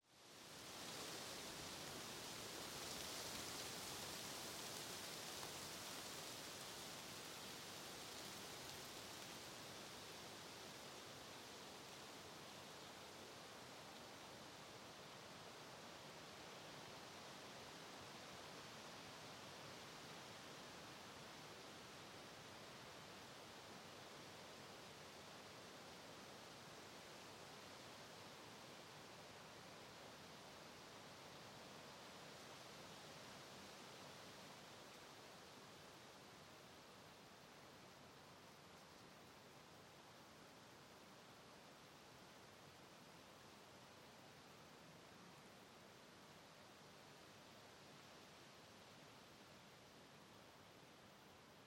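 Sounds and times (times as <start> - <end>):
wind rustling leaves in a forest: 0.0 - 51.6.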